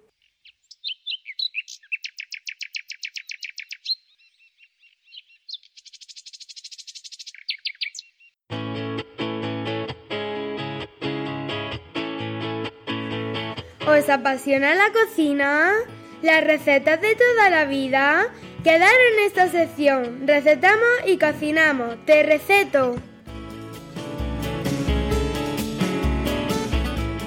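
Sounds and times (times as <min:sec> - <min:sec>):
small bird singing trills: 0:00.0 - 0:08.4
speech: 0:13.9 - 0:23.1
loud rhythmic music: 0:23.3 - 0:27.2.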